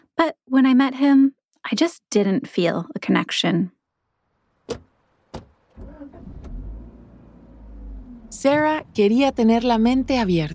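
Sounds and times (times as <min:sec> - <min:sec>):
speech: 0:00.2 - 0:03.8, 0:04.7 - 0:04.9, 0:08.3 - 0:10.5
car engine turning over and rumbling while driving: 0:04.5 - 0:10.5
car doors shutting: 0:04.6 - 0:09.1.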